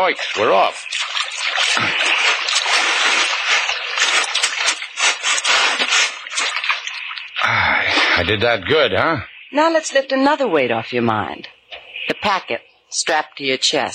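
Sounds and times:
speech: 0.0 - 1.0, 8.2 - 11.6, 12.2 - 13.9
boat dragged through shallow water onto shore: 0.0 - 9.1.

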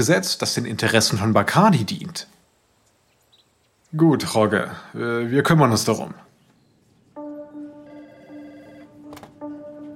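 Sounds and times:
speech: 0.0 - 2.4, 3.9 - 6.3
telephone ringing with an incoming call: 7.2 - 9.9.

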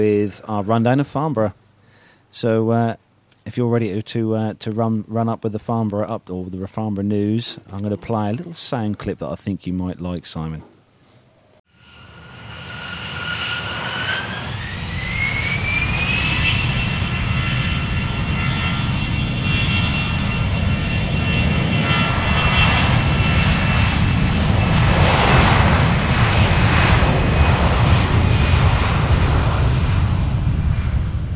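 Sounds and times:
speech: 0.0 - 1.6, 2.3 - 10.7
Airbus A380 airliner flying low at an airshow: 11.7 - 31.3.

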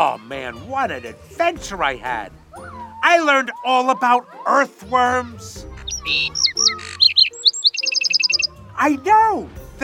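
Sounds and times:
speech: 0.0 - 6.8, 8.8 - 9.8
bird chirping and tweeting: 5.7 - 8.6.

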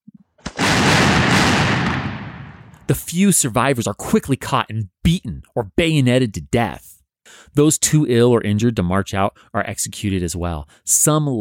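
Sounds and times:
gunfire volley of soldiers firing at prisoners at close range: 0.4 - 2.9
speech: 2.9 - 11.3.

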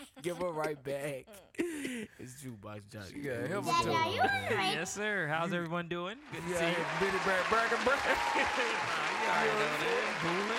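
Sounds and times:
laughter: 0.0 - 2.3, 6.4 - 10.5
speech: 0.2 - 10.5
people clapping: 6.2 - 10.5
crowd booing: 6.3 - 10.5.

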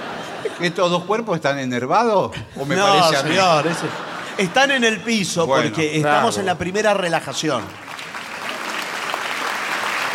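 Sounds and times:
laughter: 0.0 - 1.2, 2.3 - 6.6
speech: 0.4 - 7.9
audience applause: 6.7 - 10.1.

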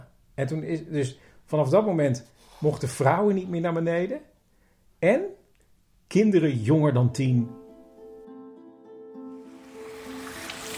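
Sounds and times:
speech: 0.4 - 4.3, 5.0 - 5.4, 6.1 - 7.6
small waterfall splashing and rushing: 9.6 - 10.7.

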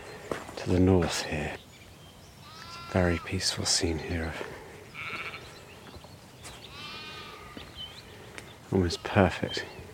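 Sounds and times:
faint breeze outdoors: 0.0 - 9.9
speech: 0.7 - 1.6, 2.9 - 4.6, 8.7 - 9.8
sheep bleating in a field in farmland: 2.4 - 3.4, 4.9 - 5.5, 6.7 - 7.7.

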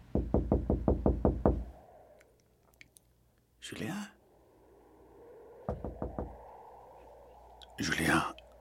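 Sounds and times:
knocking on a door: 0.1 - 1.6, 5.7 - 6.3
speech: 3.7 - 4.2, 7.8 - 8.4.

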